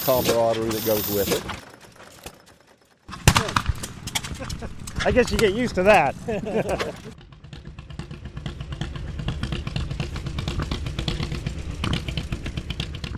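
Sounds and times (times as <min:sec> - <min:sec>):
speech: 0:00.0 - 0:01.7, 0:05.0 - 0:07.2
large antique tractor engine revving at a fall tractor event: 0:00.0 - 0:01.9, 0:06.2 - 0:13.1
laughter: 0:04.3 - 0:04.8, 0:06.1 - 0:07.2.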